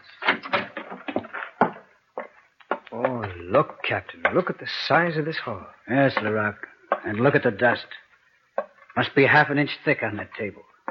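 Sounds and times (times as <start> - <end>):
door from a kitchen into a main hall opening: 0.0 - 1.8
speech: 3.3 - 8.0, 9.0 - 10.7.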